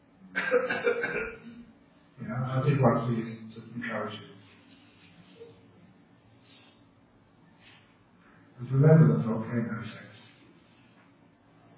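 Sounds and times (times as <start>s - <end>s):
rough throaty cough: 0.3s - 1.6s
speech: 2.3s - 4.3s, 8.6s - 10.0s.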